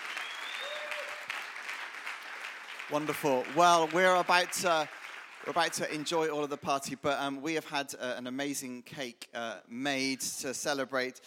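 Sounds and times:
high whistles from a crowd: 0.0s - 1.2s
crowd whooping at an anniversary celebration: 0.0s - 1.5s
crowd cheering at an anniversary celebration: 0.0s - 6.2s
crowd clapping at an anniversary celebration: 0.0s - 7.0s
speech: 2.9s - 11.2s.

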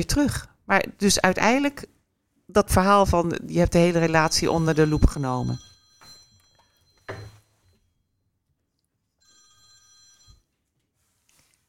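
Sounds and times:
speech: 0.0s - 5.7s
telephone ringing for an incoming call: 4.0s - 7.9s, 9.2s - 10.5s.

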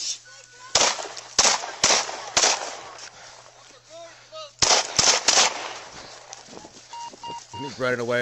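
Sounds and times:
gunshots during a police encounter: 0.7s - 3.1s, 4.6s - 6.4s
speech: 7.7s - 8.1s.

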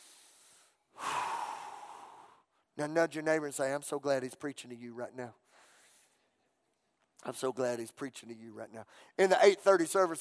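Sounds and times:
church congregation taking a big deep breath together: 0.0s - 2.7s, 5.4s - 6.2s, 8.9s - 9.2s
speech: 2.8s - 5.4s, 7.2s - 10.1s.

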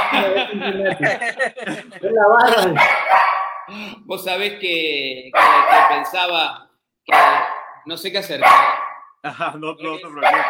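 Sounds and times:
dog barking: 0.0s - 0.4s, 2.7s - 3.7s, 5.3s - 6.2s, 7.1s - 9.1s, 10.2s - 10.4s
laughter: 0.0s - 2.8s, 9.2s - 10.2s
speech: 0.2s - 3.1s, 3.7s - 10.4s.

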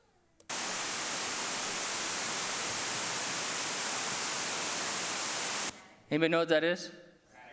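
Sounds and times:
white noise for falling asleep: 0.5s - 5.7s
speech: 6.1s - 7.0s.

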